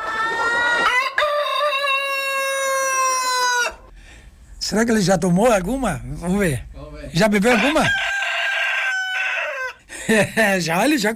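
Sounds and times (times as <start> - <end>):
gray rooster crowing: 0.0 - 3.9, 7.4 - 9.8
speech: 4.7 - 8.1, 10.1 - 11.1.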